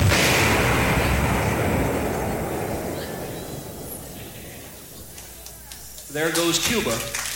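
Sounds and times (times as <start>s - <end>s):
long heavy rumble of an explosion: 0.0s - 5.0s
loud explosion: 0.0s - 5.0s
speech: 6.1s - 7.2s.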